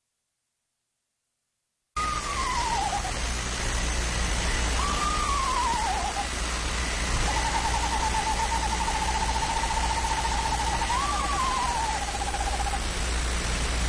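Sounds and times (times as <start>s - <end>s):
screech owl trilling: 2.0s - 3.5s, 4.4s - 12.9s
steady hiss: 2.0s - 13.8s.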